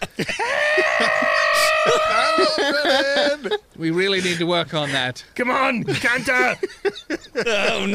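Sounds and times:
laughter: 0.0 - 5.0, 5.7 - 7.9
loud sustained scream: 0.4 - 3.5
speech: 3.8 - 7.9.

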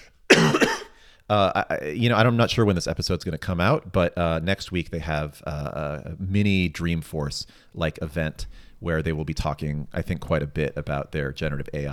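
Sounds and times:
harsh cough: 0.3 - 1.0
speech: 1.3 - 11.9.

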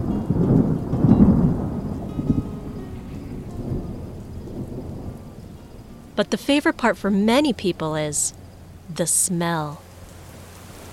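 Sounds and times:
low rolling thunder: 0.0 - 6.2
steady rainfall: 0.0 - 10.9
speech: 6.2 - 9.8.

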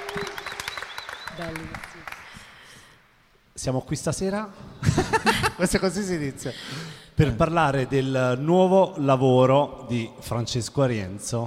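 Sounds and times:
audience applause: 0.0 - 2.8
speech: 1.4 - 2.1, 3.6 - 11.4
laughter: 4.8 - 5.9.

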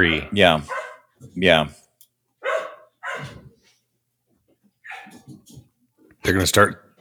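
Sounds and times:
several pet dogs barking and yipping: 0.0 - 1.4, 2.4 - 3.7, 4.8 - 5.6
speech: 0.0 - 1.8, 6.2 - 6.8.

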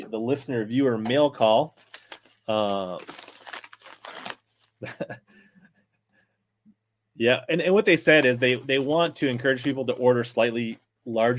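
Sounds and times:
speech: 0.1 - 3.2, 4.8 - 5.3, 7.2 - 11.3
packaging material crinkling and tearing while a mailed package is opened with scissors: 1.7 - 4.8.

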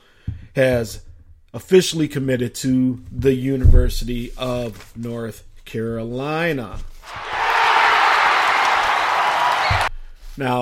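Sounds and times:
speech: 0.6 - 7.2, 10.4 - 10.5
crowd cheering: 7.0 - 9.9.

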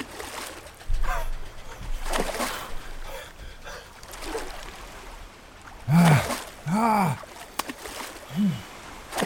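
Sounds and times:
rushing boat-like background: 0.0 - 9.2
sea water splashing as a person falls overboard from a speeding yacht: 0.0 - 9.2
person giving strained gasping cries: 5.9 - 7.2, 8.3 - 8.7.

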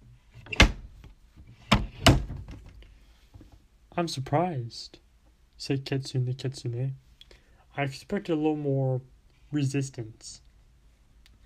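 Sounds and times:
door being pushed shut: 0.4 - 0.9, 1.7 - 2.7
latch and frame clunks of a door settling: 0.4 - 1.0
speech: 4.0 - 5.0, 5.6 - 7.0, 7.8 - 10.4.

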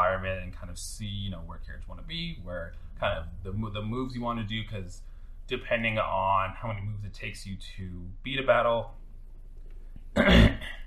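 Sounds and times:
speech: 0.1 - 9.0, 10.2 - 10.8
throat clearing: 10.2 - 10.8.

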